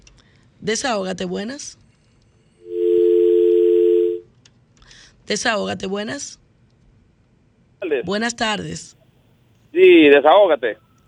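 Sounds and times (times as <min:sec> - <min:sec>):
speech: 0:00.6 - 0:01.8, 0:05.3 - 0:06.4, 0:07.8 - 0:09.0, 0:09.7 - 0:11.0
telephone line tone as call connects: 0:02.6 - 0:04.2.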